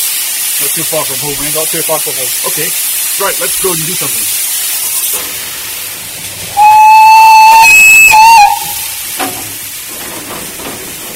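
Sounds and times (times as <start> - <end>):
loud hiss of escaping steam from a steam locomotive: 0.0 - 11.1
speech: 0.6 - 4.4
steam locomotive whistle blast: 6.5 - 9.0.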